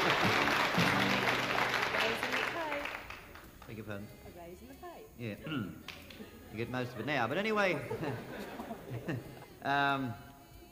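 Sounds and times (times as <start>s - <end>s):
audience clapping: 0.0s - 3.9s, 5.8s - 6.2s
speech: 3.9s - 10.3s
laughter: 5.5s - 9.6s.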